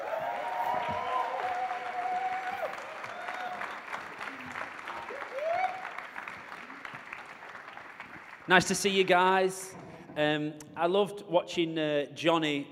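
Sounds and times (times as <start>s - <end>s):
cheering calls: 0.0s - 7.0s
audience applauding guests coming on stage: 0.0s - 9.6s
crowd noise: 0.0s - 10.2s
speech: 8.5s - 12.6s.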